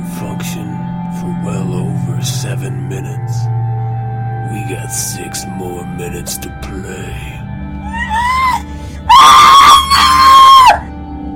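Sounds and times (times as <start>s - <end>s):
speech: 0.4s - 3.8s, 4.5s - 7.4s
person screaming: 7.8s - 10.9s.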